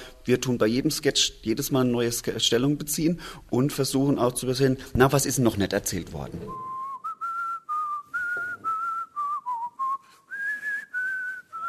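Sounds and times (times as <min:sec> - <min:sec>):
speech: 0:00.2 - 0:06.7
person whistling a song melody: 0:06.5 - 0:11.6.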